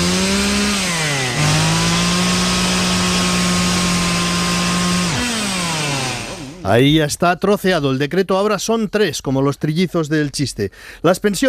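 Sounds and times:
chainsaw engine running: 0.0 - 6.7
speech: 6.7 - 11.4.

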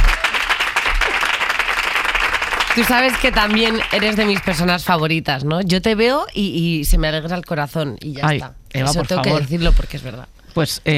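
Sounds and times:
talk show audience applauding a guest being introduced: 0.0 - 4.7
speech: 2.8 - 10.9.

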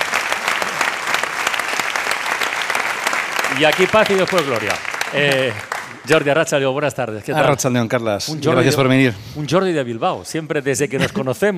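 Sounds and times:
live radio audience applauding in a room: 0.0 - 6.6
speech: 3.5 - 11.5.

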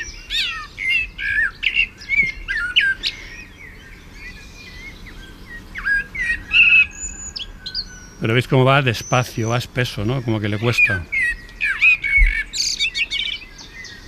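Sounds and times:
faint hum: 0.0 - 14.0
young Canary blackbird singing in laurel forest: 0.0 - 14.0
speech: 8.2 - 11.2.

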